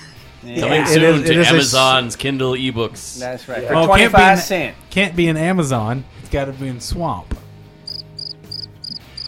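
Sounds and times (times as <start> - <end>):
speech: 0.4 - 7.4
cricket chirping: 7.9 - 9.2.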